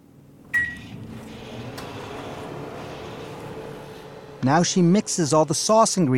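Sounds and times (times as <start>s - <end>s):
microwave oven heating cauliflower: 0.0s - 4.6s
microwave oven beep: 0.5s - 1.0s
speech: 4.4s - 6.1s.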